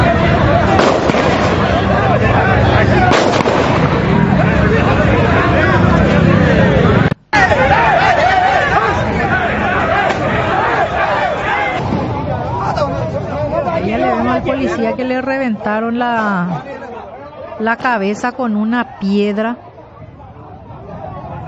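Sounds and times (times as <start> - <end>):
crowd of fans and players shouting in a clash with police: 0.0 - 15.1, 15.8 - 21.4
sharp booming pops of rubber-bullet shots: 0.7 - 1.8, 3.1 - 4.0
speech: 15.7 - 16.6, 17.6 - 19.6.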